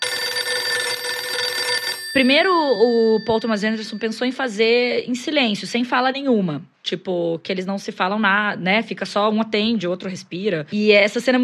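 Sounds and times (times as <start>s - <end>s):
telephone ringing in a film scene: 0.0s - 4.7s
speech: 2.1s - 11.4s.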